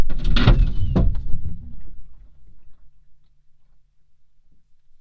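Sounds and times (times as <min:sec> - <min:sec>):
sideswipe collision: 0:00.2 - 0:02.3.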